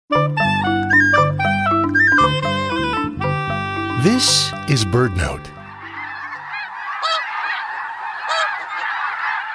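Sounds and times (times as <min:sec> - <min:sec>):
dense flock of snow geese honking: 0:00.4 - 0:09.5
speech: 0:04.1 - 0:05.6.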